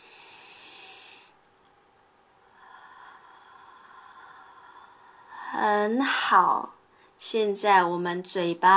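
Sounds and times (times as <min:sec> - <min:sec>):
deep inhale then exhale through the mouth: 0:00.0 - 0:01.4, 0:02.4 - 0:05.8
speech: 0:05.6 - 0:08.7.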